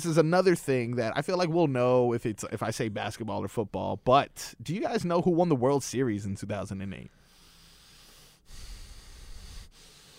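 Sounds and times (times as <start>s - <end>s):
speech: 0.0s - 7.2s
heavy noisy breathing close to the mic: 7.1s - 10.1s.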